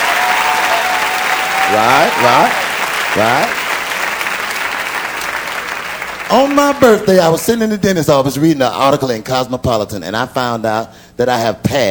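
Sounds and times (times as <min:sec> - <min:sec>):
audience applause: 0:00.0 - 0:07.6
speech: 0:01.7 - 0:03.6, 0:06.3 - 0:11.8.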